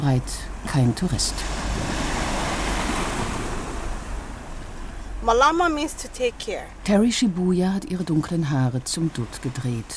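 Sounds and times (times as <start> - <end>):
speech: 0.0 - 2.0, 5.2 - 9.9
gusty wind-buffeted rumble: 0.0 - 7.0
Pacific Ocean surf roaring behind black lava rocks: 0.0 - 9.9.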